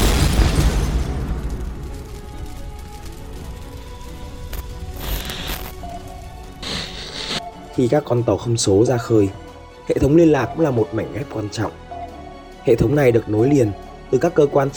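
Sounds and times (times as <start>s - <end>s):
ship exploding with deep rumbling explosion: 0.0s - 6.6s
scattered crackles and debris-like bursts: 0.0s - 7.9s
speech: 7.8s - 11.8s, 12.6s - 14.7s.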